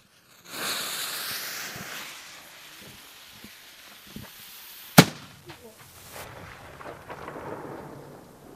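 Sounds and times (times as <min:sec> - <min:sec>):
burning fuse hissing and crackling: 0:00.0 - 0:08.5
arquebus gunshot loaded with black powder: 0:05.0 - 0:05.5, 0:06.1 - 0:08.5
rumbling echo of an arquebus gunshot: 0:05.0 - 0:08.5.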